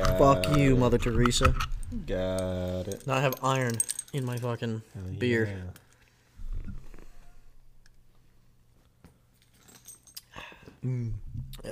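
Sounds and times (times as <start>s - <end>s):
speech: 0.2s - 5.8s, 10.8s - 11.7s
keys jangling: 2.4s - 4.5s, 9.4s - 10.4s.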